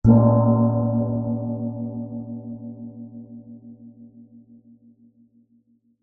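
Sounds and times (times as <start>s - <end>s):
small gamelan gong soft hit: 0.0s - 3.8s.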